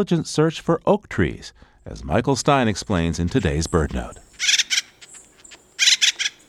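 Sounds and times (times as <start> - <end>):
speech: 0.0 - 4.6
acorn woodpecker calling from a dead oak tree: 2.6 - 6.4.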